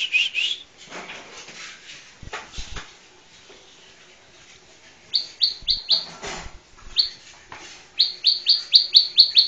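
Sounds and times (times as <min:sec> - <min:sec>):
Bar-winged prinia song with chirps and quick high notes: 0:05.1 - 0:06.1, 0:06.9 - 0:07.2, 0:08.0 - 0:09.4.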